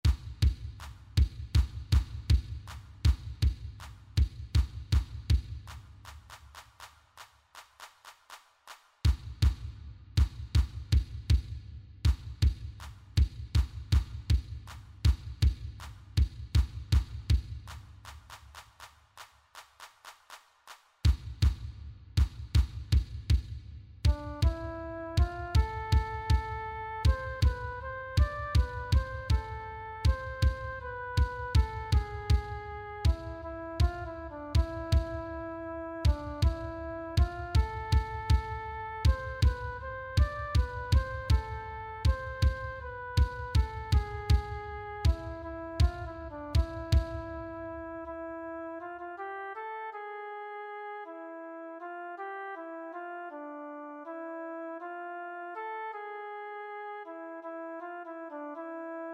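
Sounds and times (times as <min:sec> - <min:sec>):
drum playing a Hebrew dance: 0:00.0 - 0:06.9, 0:09.1 - 0:18.6, 0:21.1 - 0:35.2, 0:36.0 - 0:47.3.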